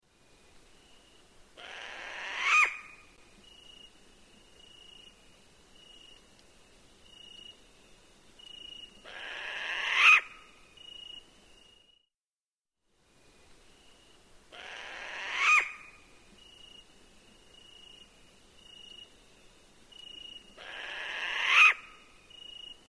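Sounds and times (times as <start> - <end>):
Hawaiian short-eared owl rasping calls in Hawaii: 1.6 - 3.0, 9.0 - 10.5, 14.5 - 16.0, 20.6 - 22.0.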